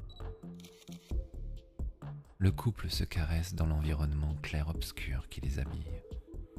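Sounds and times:
photographer's camera shutter clicks: 0.4 - 1.2
speech: 2.4 - 6.2.

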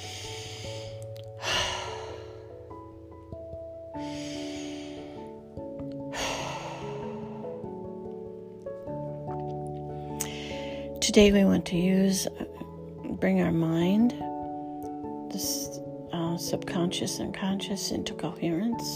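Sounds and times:
slow cleansing breaths, soft airy inhales and exhales: 0.0 - 3.4, 4.0 - 8.3, 9.8 - 11.0
gentle sustained music: 0.0 - 18.9
speech: 11.1 - 12.5, 13.2 - 14.2, 16.4 - 18.9.

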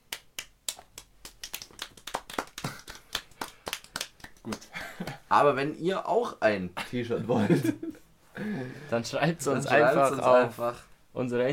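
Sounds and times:
a few people clapping their hands: 0.1 - 5.2
speech: 4.5 - 4.7, 5.3 - 11.5
laughter: 7.1 - 8.0.

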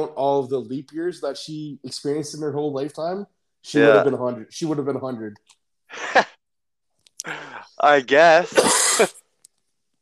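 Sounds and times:
speech: 0.0 - 6.3, 7.2 - 9.2
laughter: 5.9 - 6.4
short breath: 7.2 - 7.7
person coughing harshly: 8.5 - 9.2.

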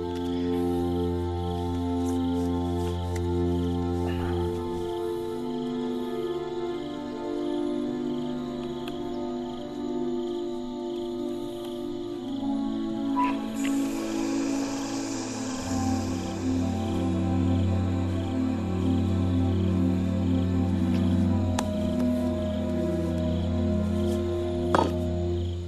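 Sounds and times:
instrumental film score cue: 0.0 - 25.6.

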